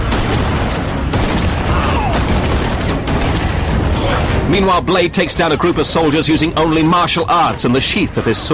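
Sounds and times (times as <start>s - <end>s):
pump-action shotgun blasts in a film action scene: 0.1s - 4.5s
mechanical clatter of a pump-action shotgun: 0.1s - 7.2s
speech: 4.5s - 8.5s.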